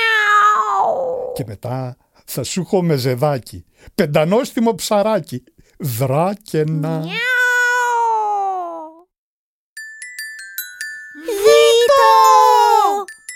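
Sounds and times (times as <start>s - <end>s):
cat meowing while being chased out of a bookshop: 0.0s - 1.4s, 6.9s - 8.9s
speech: 1.4s - 7.3s
tinkling chime notes: 9.8s - 13.3s.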